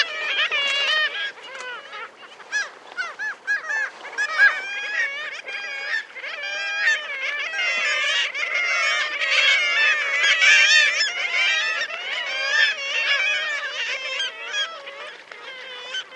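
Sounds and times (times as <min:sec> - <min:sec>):
black-legged kittiwake colony crying: 0:00.0 - 0:16.1.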